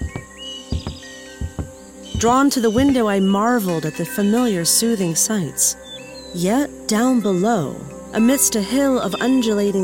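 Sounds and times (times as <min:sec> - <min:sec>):
soft irregular thuds: 0:00.0 - 0:03.0
birds chirping faintly: 0:00.0 - 0:09.8
speech: 0:02.2 - 0:09.8.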